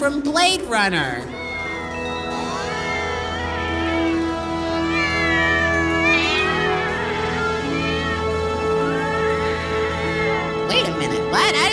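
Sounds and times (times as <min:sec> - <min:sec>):
speech: 0:00.0 - 0:01.4
several cats meowing: 0:01.3 - 0:11.7.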